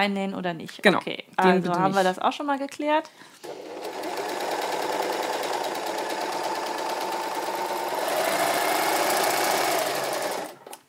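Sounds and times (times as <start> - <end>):
speech: 0.0 - 3.7
overlock sewing machine stitching at high speed: 3.4 - 10.8.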